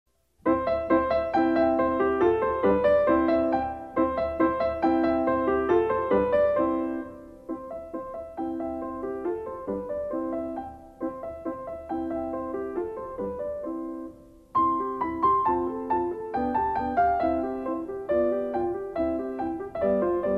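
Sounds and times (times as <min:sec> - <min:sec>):
ecossaise dance music: 0:00.2 - 0:20.3.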